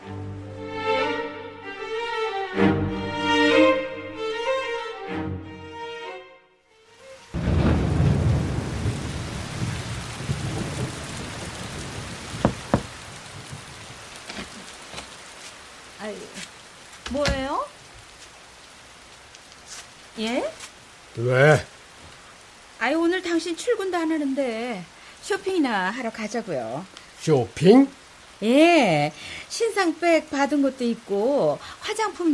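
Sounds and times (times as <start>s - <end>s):
sustained musical chord: 0.0s - 7.2s
steady hissing rain: 6.8s - 32.3s
deep rolling thunder rumbling: 7.4s - 14.0s
speech: 21.2s - 21.7s, 23.8s - 32.3s.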